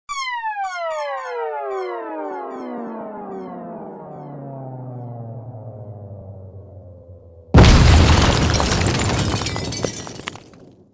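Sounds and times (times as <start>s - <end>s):
space ship explosion: 7.6s - 9.5s.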